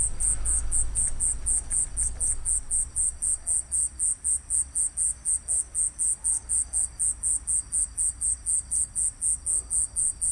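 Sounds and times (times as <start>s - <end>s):
low rumbling hum: 0.0s - 3.5s
crickets chirping at night: 0.0s - 10.2s.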